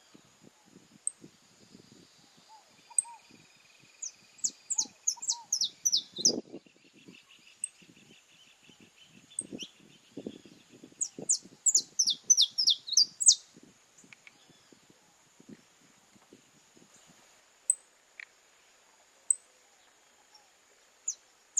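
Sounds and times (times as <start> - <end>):
Belgian canary song: 2.0 - 14.9, 17.7 - 18.3, 19.2 - 19.5, 21.0 - 21.5.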